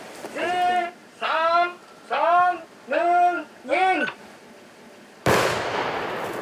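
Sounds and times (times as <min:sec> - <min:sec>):
person calling out drawn-out syllables: 0:00.4 - 0:04.1
controlled detonation of an unexploded bomb set off by wire: 0:05.3 - 0:06.3.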